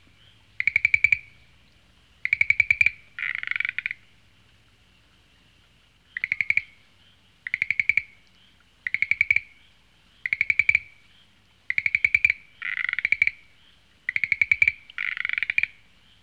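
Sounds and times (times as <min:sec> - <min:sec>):
frog calling: 0:00.0 - 0:01.6, 0:02.2 - 0:04.1, 0:06.1 - 0:06.8, 0:07.4 - 0:08.2, 0:08.8 - 0:15.8.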